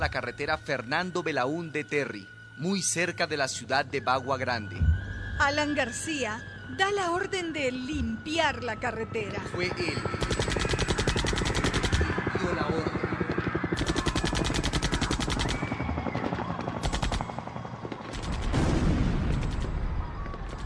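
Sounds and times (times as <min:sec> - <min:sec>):
speech: 0:00.0 - 0:10.5
gunfire as police open fire on Indigenous protesters blocking a highway near Bagua Grande: 0:10.0 - 0:19.9.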